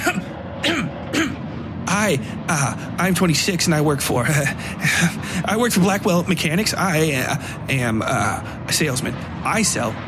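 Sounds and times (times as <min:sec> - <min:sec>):
short dry coughs or throat-clearing bursts: 0:00.0 - 0:01.4
speech: 0:02.0 - 0:10.0.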